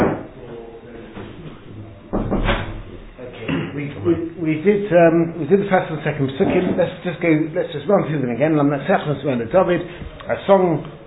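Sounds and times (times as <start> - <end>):
faint voices murmuring: 0.0 - 11.0
door swinging shut with a solid thud: 2.1 - 2.9
speech: 4.0 - 11.0.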